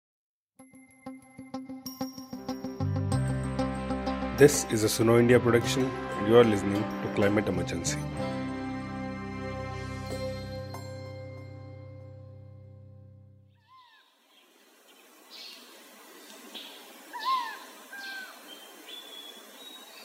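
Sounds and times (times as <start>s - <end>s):
sustained musical tones: 1.1s - 13.5s
speech: 4.4s - 8.4s
forest owlet calls, chirping and whistled notes: 13.6s - 14.1s, 16.6s - 20.0s
soft hiss: 13.6s - 20.0s.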